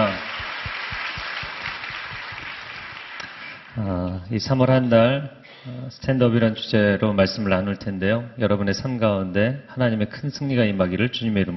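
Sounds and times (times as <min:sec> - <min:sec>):
audience applauding: 0:00.0 - 0:03.8
speech: 0:03.8 - 0:11.5.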